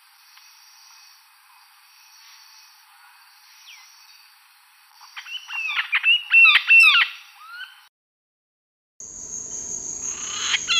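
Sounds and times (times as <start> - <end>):
red-fan parrot Deroptyus accipitrinus giving harsh squawky harmonic calls: 5.2 - 7.8, 10.0 - 10.7.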